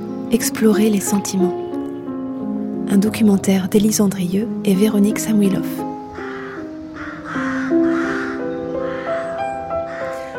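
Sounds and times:
speech: 0.3s - 1.6s, 2.9s - 5.9s
rooks cawing around an old parsonage: 6.0s - 10.3s.

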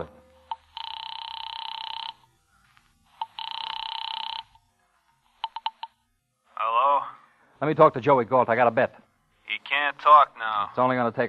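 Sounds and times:
telephone ringing during an outgoing call: 0.0s - 2.3s, 3.1s - 4.6s, 5.4s - 6.0s
speech: 7.6s - 9.0s, 9.9s - 11.2s.

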